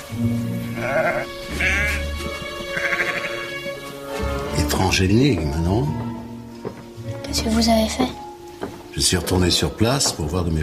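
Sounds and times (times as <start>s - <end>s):
speech: 0.1s - 2.0s, 4.8s - 6.1s, 7.3s - 8.2s, 9.0s - 10.6s
sheep bleating: 0.6s - 3.6s.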